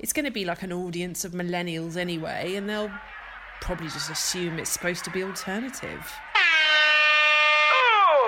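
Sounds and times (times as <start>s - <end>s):
speech: 0.0s - 6.4s
loud sustained air horn blast at a comedy stage: 6.3s - 8.1s.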